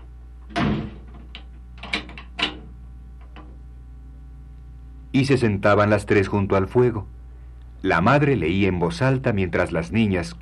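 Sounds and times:
door swinging shut with a solid thud: 0.5 - 1.3
speech: 5.2 - 7.2, 7.8 - 10.4.

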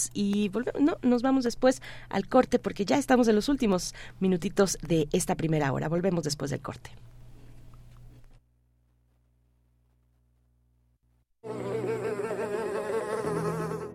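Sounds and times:
speech: 0.0 - 7.2
flies buzzing: 11.5 - 13.9.

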